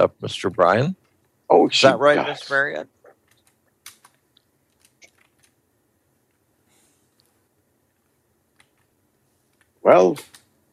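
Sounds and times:
speech: 0.0 - 3.0, 9.8 - 10.4
low hum: 0.0 - 10.7
typing on a computer keyboard: 3.2 - 5.6, 8.0 - 8.9.

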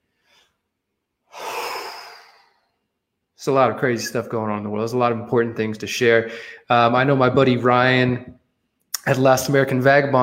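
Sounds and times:
person taking a deep breath: 1.3 - 2.8, 6.3 - 6.7
speech: 3.4 - 8.4, 9.0 - 10.2.

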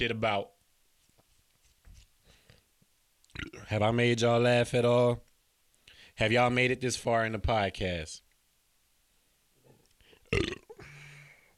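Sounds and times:
speech: 0.0 - 0.6, 3.4 - 5.3, 6.2 - 8.2, 10.3 - 10.5
person burping: 3.3 - 3.7, 10.3 - 11.0.

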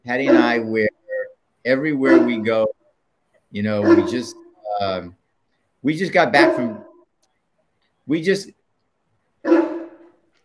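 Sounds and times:
speech: 0.0 - 1.0, 1.6 - 2.8, 3.5 - 5.2, 5.8 - 6.9, 8.1 - 8.6, 9.4 - 9.6
dog barking with throaty woofs: 0.1 - 0.8, 2.0 - 2.7, 3.8 - 4.7, 6.4 - 7.0, 9.4 - 10.2.

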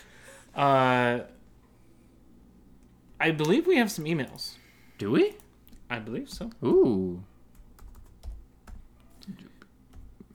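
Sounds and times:
low steady hum: 0.0 - 10.3
speech: 0.6 - 1.4, 3.2 - 7.3, 9.3 - 9.5
typing on a computer keyboard: 7.6 - 8.8.

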